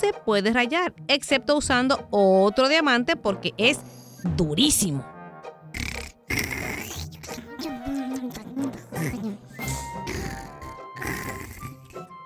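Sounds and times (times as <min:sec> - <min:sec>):
speech: 0:00.0 - 0:05.1
loud rasping snoring: 0:05.7 - 0:12.0.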